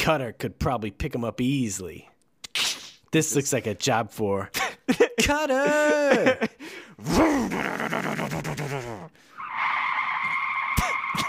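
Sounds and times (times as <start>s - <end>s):
speech: 0.0s - 2.1s, 3.1s - 9.3s
laughter: 4.5s - 9.2s
high-pitched tire squeal as a boat turns: 9.3s - 11.2s.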